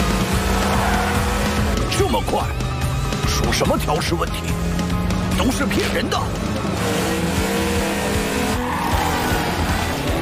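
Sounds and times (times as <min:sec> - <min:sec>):
race car engines roaring around a track during a race: 0:00.0 - 0:10.1
race car tire squeals and skids: 0:00.2 - 0:01.8, 0:06.8 - 0:10.1
speech: 0:02.2 - 0:02.6, 0:03.4 - 0:07.2.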